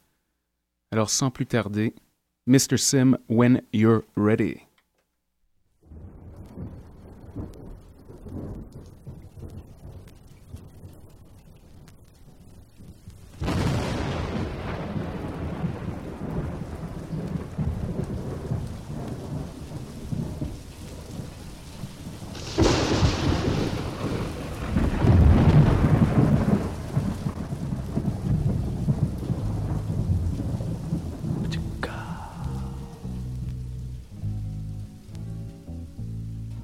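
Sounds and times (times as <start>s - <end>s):
speech: 0.9s - 4.7s
heavy rumbling thunder: 5.8s - 34.1s
steady rain pouring down: 5.8s - 36.6s.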